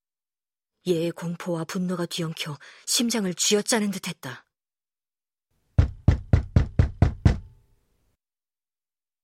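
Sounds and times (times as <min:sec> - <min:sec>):
speech: 0:00.8 - 0:04.4
frantic heavy knocking on a locked wooden room door: 0:05.8 - 0:07.6.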